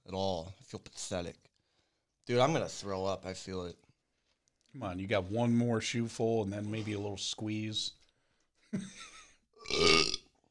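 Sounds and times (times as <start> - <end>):
speech: 0.7 - 1.5, 2.3 - 3.8, 4.7 - 8.0, 8.7 - 10.2
loud burps: 9.6 - 10.4.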